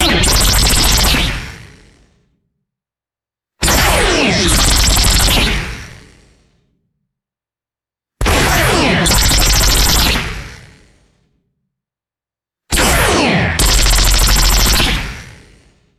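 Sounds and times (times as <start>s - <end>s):
rapid synthesized automatic laser blasts: 0.0s - 1.8s, 3.6s - 6.1s, 8.2s - 10.7s, 12.7s - 15.5s.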